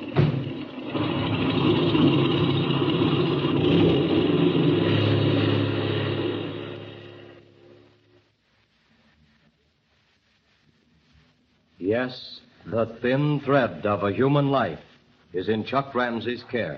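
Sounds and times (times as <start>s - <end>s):
airplane engine revving up for takeoff: 0.5s - 7.8s
speech: 12.0s - 16.7s.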